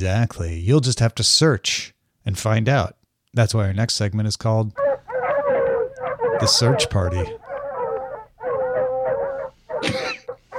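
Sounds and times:
speech: 0.0 - 4.8, 6.4 - 7.4
several dogs howling: 4.8 - 10.5
laughter: 6.2 - 10.5.

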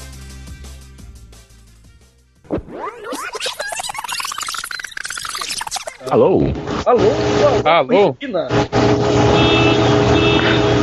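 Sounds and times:
loud steady broadband roar: 6.0 - 10.8
speech: 6.1 - 10.0
car alarm sounding in the street: 9.2 - 10.8.

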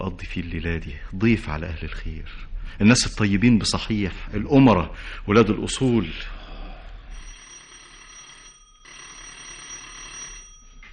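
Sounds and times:
speech: 0.1 - 6.4
doorbell ringing in a continuous metallic buzz: 7.2 - 10.9.

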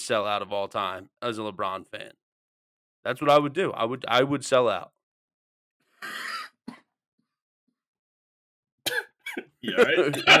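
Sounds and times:
speech: 0.0 - 2.2, 3.0 - 5.0, 9.4 - 10.3
person coughing: 6.0 - 7.0, 8.9 - 9.6
laughter: 9.6 - 10.3.

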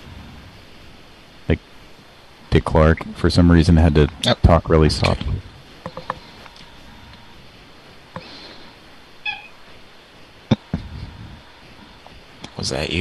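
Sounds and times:
speech: 1.5 - 1.7, 2.6 - 5.5, 12.7 - 12.9
soft clicks and knocks: 5.1 - 6.6
cat meowing: 9.2 - 9.6.

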